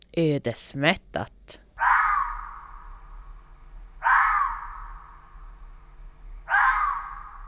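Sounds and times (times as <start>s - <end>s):
faint low hum: 0.0s - 7.4s
speech: 0.2s - 1.6s
fox howling: 1.8s - 7.4s.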